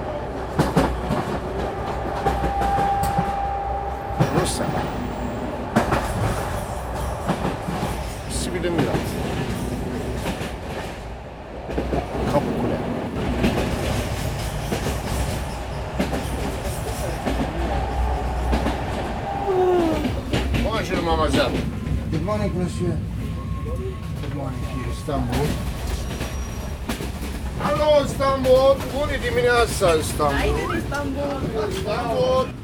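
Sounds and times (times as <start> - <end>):
old train rumble inside a carriage on the Bosphore Express: 0.0 - 32.6.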